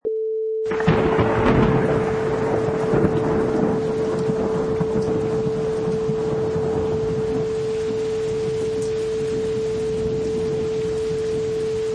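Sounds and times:
thunder clap: 0:00.7 - 0:11.6.

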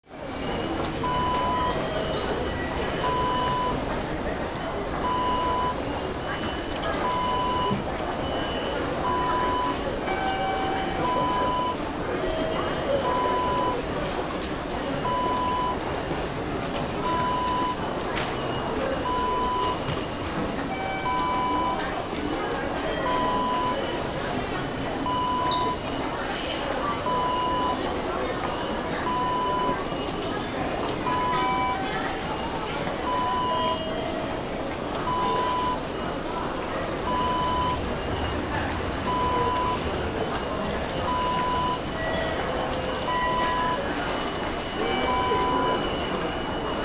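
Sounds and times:
metro station ambience: 0:00.0 - 0:46.8.

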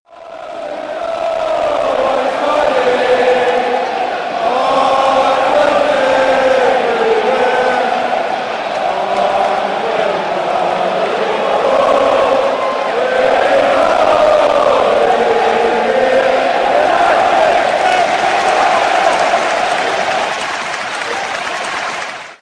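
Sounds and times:
football fans chanting: 0:00.1 - 0:22.3.

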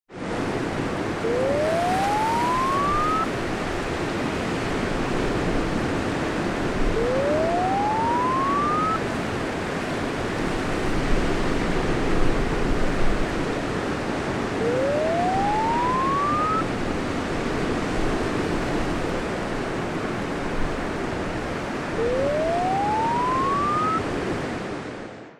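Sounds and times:
sea waves: 0:00.2 - 0:24.9.

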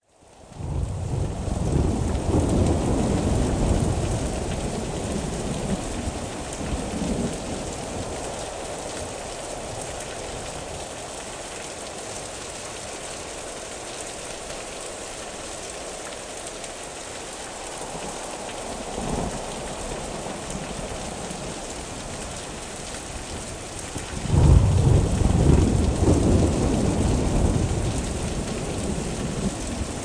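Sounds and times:
thunderstorm: 0:00.4 - 0:11.1, 0:17.8 - 0:30.0.

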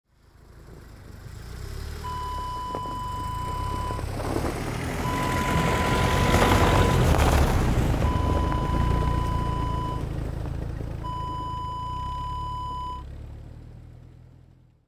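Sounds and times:
car turning in snow: 0:00.1 - 0:14.8.

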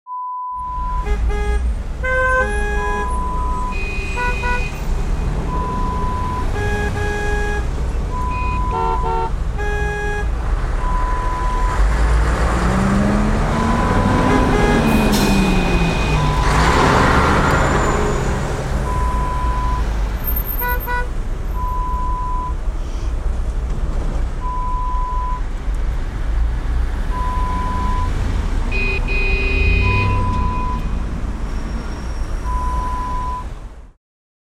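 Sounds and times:
traffic jam noise: 0:00.1 - 0:34.0.

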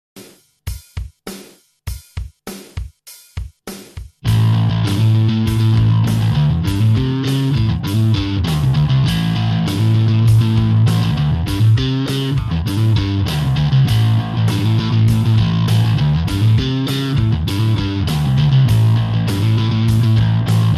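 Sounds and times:
distorted pentatonic lick in A minor: 0:04.2 - 0:20.7.

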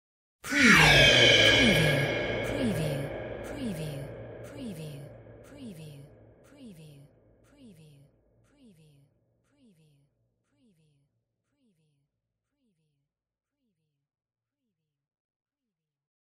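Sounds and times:
spooky sci-fi eeyow sound effect: 0:00.5 - 0:04.2
spooky sci-fi whispers: 0:00.5 - 0:07.1.

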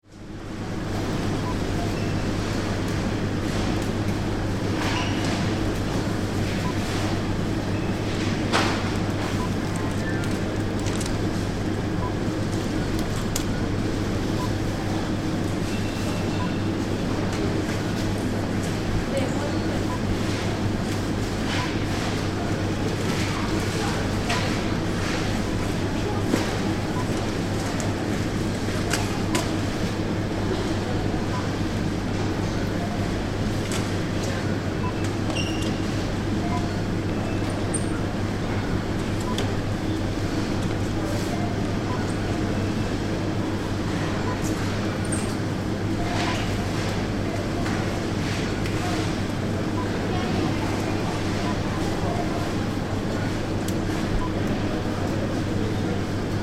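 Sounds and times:
supermarket ambience in the vegetable aisle: 0:00.1 - 0:56.4.

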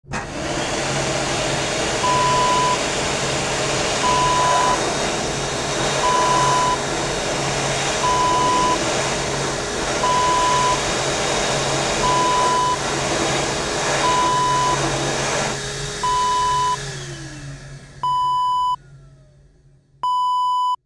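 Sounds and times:
hand dryer blowing: 0:00.0 - 0:18.8.

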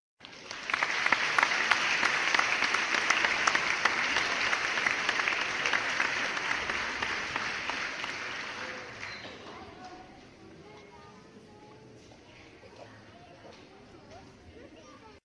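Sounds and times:
applause: 0:00.2 - 0:09.9.

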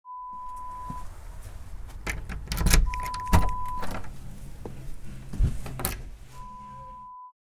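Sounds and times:
door unlocking: 0:02.0 - 0:04.1, 0:05.7 - 0:06.0.

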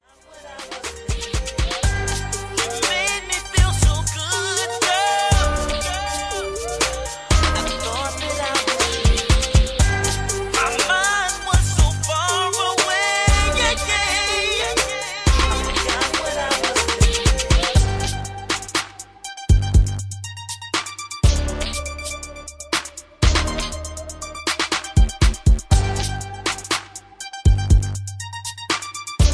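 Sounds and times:
60 BPM beat with hook: 0:00.3 - 0:29.3.

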